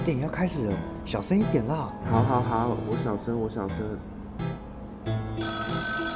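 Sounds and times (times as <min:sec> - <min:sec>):
speech: 0:00.1 - 0:04.5
mobile phone ringtone in a cinema: 0:05.3 - 0:06.1.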